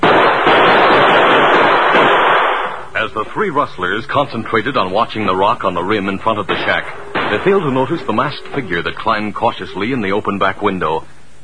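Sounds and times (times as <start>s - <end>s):
gunshots fired through shack windows in a western shootout: 0.0s - 2.9s, 6.3s - 9.8s
speech: 3.2s - 11.2s.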